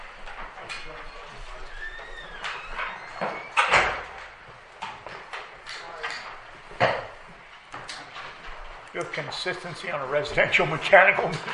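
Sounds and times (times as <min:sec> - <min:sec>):
door closing with a solid thud during a meeting break: 0:01.2 - 0:04.2
speech: 0:09.0 - 0:11.5.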